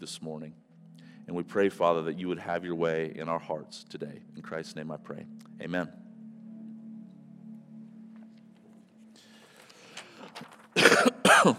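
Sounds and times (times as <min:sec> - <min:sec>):
preacher starting a sermon: 0:00.0 - 0:00.6, 0:01.3 - 0:06.0
speech: 0:00.0 - 0:00.7, 0:01.3 - 0:06.0
rough throaty coughing: 0:10.8 - 0:11.5.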